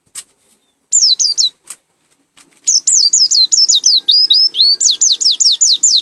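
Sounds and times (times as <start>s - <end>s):
endemic white-eye singing downslurred whistles in Malang East Java: 0.9s - 1.6s, 2.7s - 5.9s.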